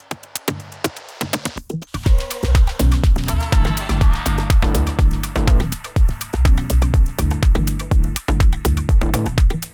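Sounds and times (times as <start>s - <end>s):
tech house clap transient: 0.0s - 9.7s.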